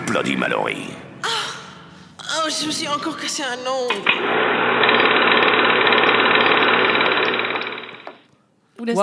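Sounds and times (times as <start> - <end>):
speech: 0.1 - 1.0, 2.5 - 5.3, 8.9 - 9.0
jackhammer pounding: 4.0 - 8.3.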